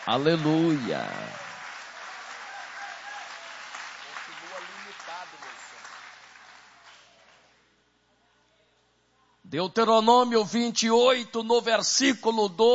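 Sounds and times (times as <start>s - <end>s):
audience applauding: 0.0s - 7.5s
speech: 0.1s - 1.4s, 9.5s - 12.7s.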